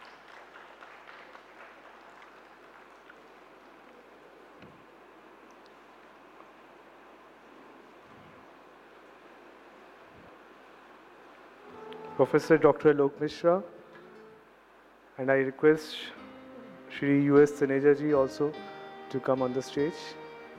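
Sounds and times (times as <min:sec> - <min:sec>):
crowd applause welcoming guests on stage: 0:00.0 - 0:04.2
speech: 0:12.2 - 0:13.8, 0:15.2 - 0:16.2, 0:16.9 - 0:20.2.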